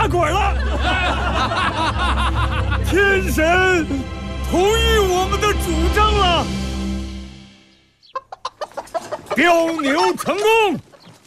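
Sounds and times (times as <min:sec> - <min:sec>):
laughter: 0:00.0 - 0:04.1
speech: 0:00.1 - 0:00.7, 0:01.4 - 0:06.6, 0:09.4 - 0:10.9
large rooster clucking: 0:08.0 - 0:11.2.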